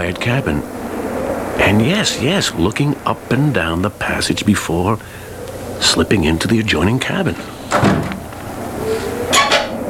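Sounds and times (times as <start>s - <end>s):
speech: 0.0s - 0.8s, 1.6s - 5.2s, 5.8s - 8.2s
lid being pried off an oblong box: 9.3s - 9.8s.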